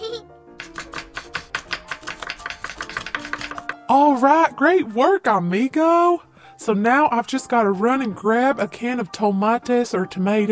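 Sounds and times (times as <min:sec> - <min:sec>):
light music: 0:00.0 - 0:10.5
knife chopping carrots and potatoes on a cutting board: 0:00.6 - 0:03.9
speech: 0:03.9 - 0:10.5.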